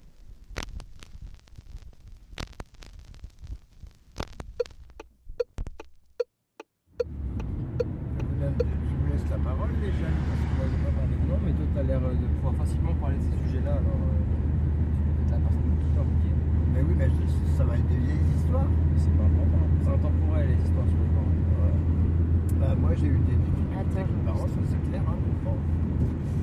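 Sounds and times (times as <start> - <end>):
car engine running in a moving car: 6.9 - 26.4
people talking: 8.2 - 14.3, 15.3 - 21.8, 22.5 - 25.6.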